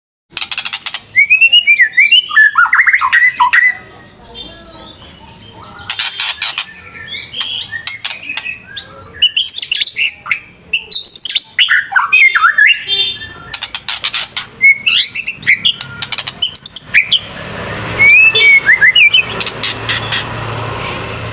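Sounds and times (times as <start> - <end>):
caged white-rumped shama singing warbled looping whistles: 1.1 - 3.8, 6.1 - 13.7, 14.6 - 19.4.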